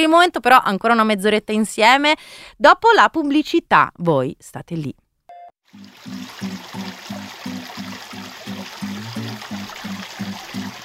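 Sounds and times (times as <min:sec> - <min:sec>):
speech: 0:00.0 - 0:05.0
sea waves washing: 0:05.7 - 0:10.8.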